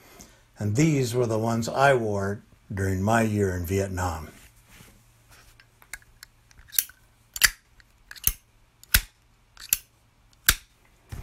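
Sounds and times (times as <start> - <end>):
speech: 0.6 - 4.4
Zippo lighter lid snapping open and shut: 6.6 - 10.6.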